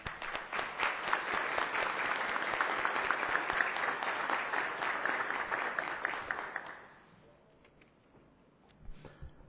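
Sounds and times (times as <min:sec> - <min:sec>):
crowd applauding: 0:00.0 - 0:07.1.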